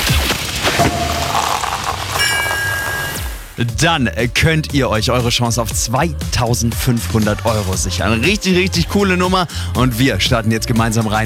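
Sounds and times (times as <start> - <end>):
crackling fizz of sparkling wine bubbles: 0.0 - 3.4
sparkling wine cork popping: 0.8 - 3.4
bright ringing tones: 0.8 - 3.5
speech: 3.6 - 11.2.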